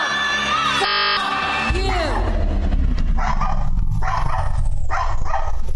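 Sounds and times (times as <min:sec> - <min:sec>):
horn-like blast: 0:00.1 - 0:02.8
dog barking: 0:03.2 - 0:05.6.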